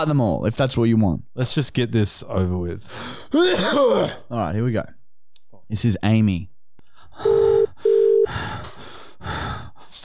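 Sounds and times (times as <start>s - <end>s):
speech: 0.0s - 5.0s, 5.7s - 6.5s, 7.2s - 7.5s
heavy rough gasping breathing over a phone line: 6.9s - 9.8s
steady electronic ringing beeps: 7.2s - 8.3s.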